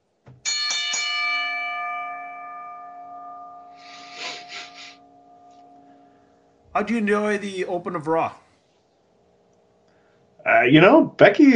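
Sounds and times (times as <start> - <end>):
bell ringing: 0.4 - 7.0
speech: 6.8 - 8.4, 10.7 - 11.5.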